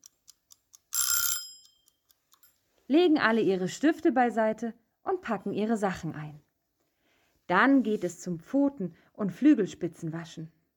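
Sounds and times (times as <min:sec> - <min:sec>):
alarm clock ticking: 0:00.0 - 0:02.6
alarm clock ringing: 0:00.9 - 0:02.5
speech: 0:02.9 - 0:06.5, 0:07.5 - 0:10.6.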